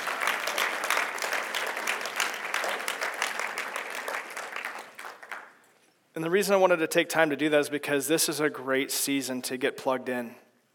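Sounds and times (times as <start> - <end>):
room full of people clapping: 0.0 - 5.6
speech: 6.2 - 10.4.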